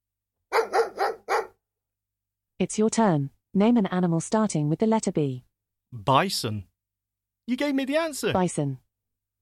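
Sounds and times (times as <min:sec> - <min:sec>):
beagle barking: 0:00.5 - 0:01.6
speech: 0:02.6 - 0:06.7, 0:07.5 - 0:08.8.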